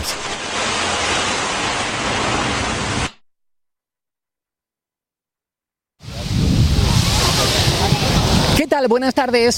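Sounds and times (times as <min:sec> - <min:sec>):
breaking waves on a beach at Salobreña: 0:00.0 - 0:03.2, 0:06.0 - 0:09.5
speech: 0:08.8 - 0:09.5.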